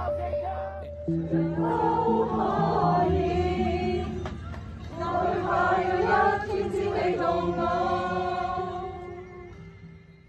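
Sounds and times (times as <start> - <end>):
large protest crowd chanting in unison: 1.2 - 9.2.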